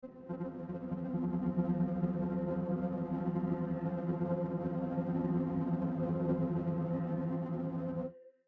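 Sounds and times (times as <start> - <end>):
synth pad: 0.0 - 8.1.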